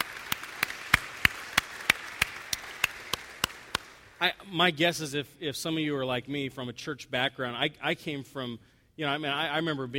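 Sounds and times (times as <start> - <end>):
audience clapping together in a steady rhythm: 0.0 - 4.3
speech: 4.2 - 9.9.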